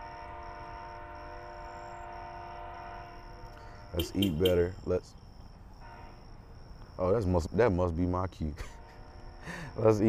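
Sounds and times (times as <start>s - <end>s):
train horn blaring: 0.0s - 4.6s, 5.8s - 6.2s
speech: 3.9s - 5.2s, 7.0s - 8.8s, 9.4s - 10.0s.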